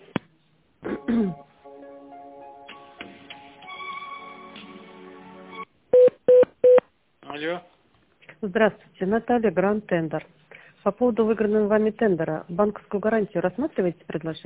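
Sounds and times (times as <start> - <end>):
short repeated telephone beeps at a steady pitch: 6.0 - 6.8
speech: 8.4 - 14.4.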